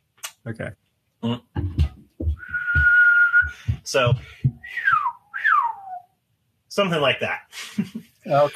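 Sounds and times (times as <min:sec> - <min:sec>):
speech: 0:00.4 - 0:01.8, 0:03.9 - 0:04.8, 0:06.8 - 0:08.5
person whistling a sustained note drifting downward in pitch: 0:02.4 - 0:03.8, 0:04.6 - 0:06.1.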